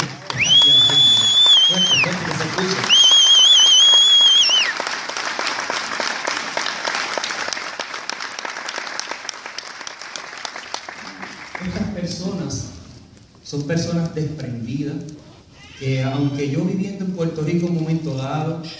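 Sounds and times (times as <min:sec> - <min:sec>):
cheering voices: 0:00.0 - 0:04.7
crowd sustained applause: 0:00.0 - 0:12.1
sharp whistle: 0:00.4 - 0:02.2, 0:02.8 - 0:04.7
speech: 0:13.7 - 0:15.2, 0:15.8 - 0:18.7.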